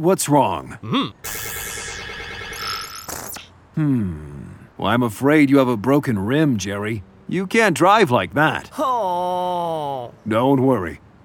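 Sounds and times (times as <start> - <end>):
speech: 0.0 - 1.7, 3.8 - 11.0
synthetic sci-fi scanning effect for a robot's x-ray scan: 1.3 - 3.5.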